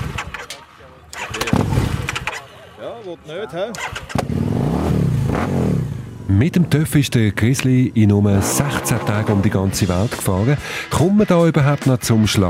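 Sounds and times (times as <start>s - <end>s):
motorcycle engine starting: 0.0s - 2.7s, 3.6s - 10.0s
speech: 2.8s - 4.7s, 6.3s - 12.4s.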